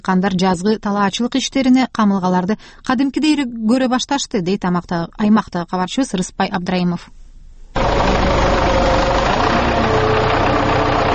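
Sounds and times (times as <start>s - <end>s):
speech: 0.0s - 7.2s
tractor engine running during spring preparation of farmland: 7.8s - 11.1s.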